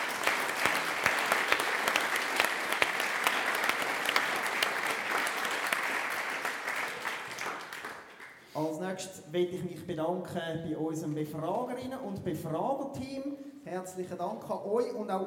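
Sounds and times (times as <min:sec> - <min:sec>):
audience applause: 0:00.0 - 0:08.4
speech: 0:09.0 - 0:15.2.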